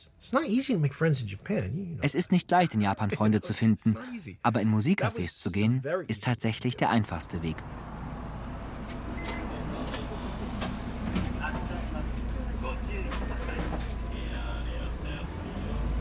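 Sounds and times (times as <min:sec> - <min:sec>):
speech: 0:00.2 - 0:07.9
city bus engine rumbling on the move: 0:07.0 - 0:15.9
clunks and rattles: 0:07.8 - 0:12.4, 0:13.0 - 0:14.1
laughter: 0:09.4 - 0:14.6.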